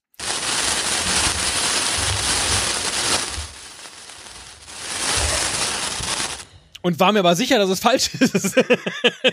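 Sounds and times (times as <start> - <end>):
burning sparkler crackling and fizzing: 0.0 - 6.6
laughter: 5.1 - 5.8, 8.0 - 9.3
speech: 6.8 - 9.3.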